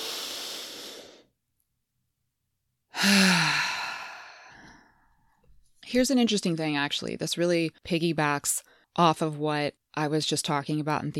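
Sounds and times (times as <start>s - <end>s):
big deep breath in: 0.0s - 1.3s, 2.9s - 5.4s
long heavy exhale like a sigh: 0.0s - 1.3s, 3.0s - 4.9s
speech: 3.0s - 3.3s, 5.9s - 11.1s.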